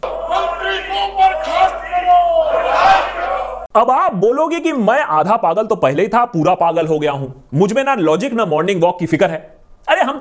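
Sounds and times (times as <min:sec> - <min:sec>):
parliament members chanting a slogan: 0:00.0 - 0:03.7
speech: 0:03.8 - 0:10.1.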